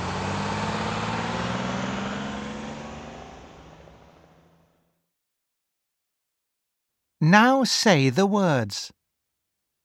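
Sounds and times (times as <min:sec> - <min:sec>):
bus engine rumbling as bus pulls away: 0:00.0 - 0:04.8
speech: 0:07.2 - 0:09.0.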